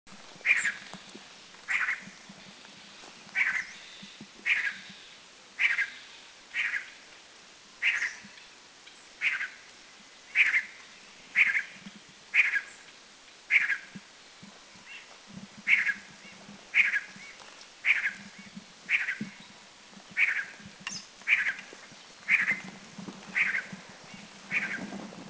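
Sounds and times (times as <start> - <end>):
giant nuthatch calling in Doi Chiang Dao Thailand: 0.4 - 0.9, 1.7 - 2.1, 3.4 - 5.0, 5.6 - 7.0, 7.8 - 8.4, 9.2 - 9.6, 10.4 - 11.8, 12.4 - 12.8, 13.5 - 13.9, 15.7 - 19.6, 20.2 - 21.7, 22.3 - 22.7, 23.3 - 24.9.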